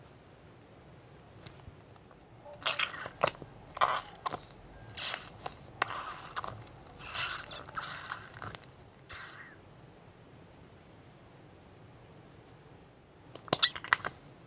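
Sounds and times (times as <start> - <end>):
wet crackling of sponge slime: 1.2 - 9.6
sponge slime being squeezed and pressed: 2.6 - 9.4, 13.4 - 14.1.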